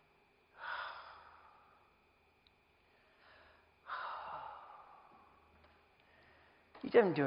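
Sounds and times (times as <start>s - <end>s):
deep airy breath close to the microphone: 0.6s - 2.0s, 2.8s - 6.8s
speech: 6.8s - 7.2s.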